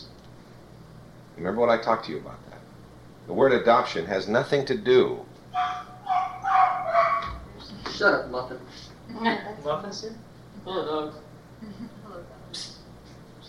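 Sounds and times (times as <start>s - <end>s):
speech: 1.4s - 2.6s, 3.2s - 5.7s, 8.0s - 12.7s
several dogs barking and yipping: 5.5s - 7.6s.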